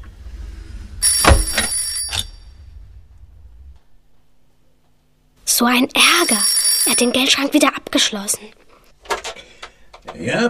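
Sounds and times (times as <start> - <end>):
low hum: 0.0 - 10.4
speech: 5.6 - 8.6, 10.2 - 10.4
old-style telephone bell ringing: 6.0 - 7.3.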